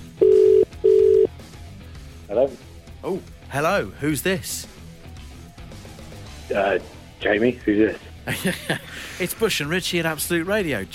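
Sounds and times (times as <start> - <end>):
telephone line ringing tone after a number is dialled: 0.2 - 1.3
speech: 2.4 - 4.7, 6.5 - 10.9
laughter: 8.2 - 9.5.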